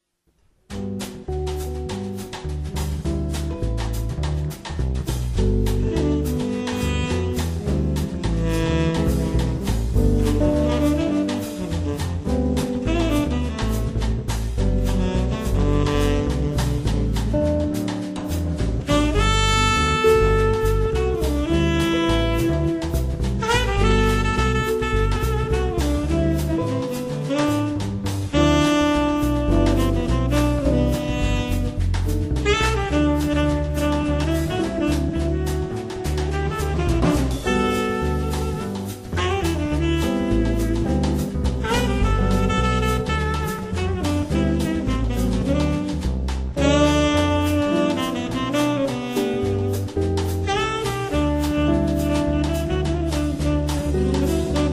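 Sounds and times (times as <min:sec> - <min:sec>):
trio plus saxophone playing Latin swing: 0:00.7 - 0:54.7.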